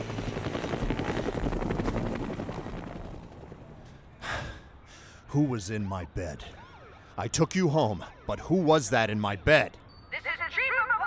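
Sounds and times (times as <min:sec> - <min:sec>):
helicopter rotor chopping: 0:00.0 - 0:04.0
breathy gasp: 0:04.1 - 0:05.3
speech: 0:05.3 - 0:06.6, 0:07.2 - 0:09.8.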